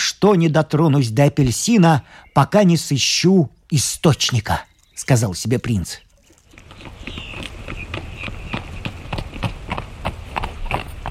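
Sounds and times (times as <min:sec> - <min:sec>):
speech: 0:00.2 - 0:06.0
horse hooves clip-clopping: 0:06.1 - 0:11.0.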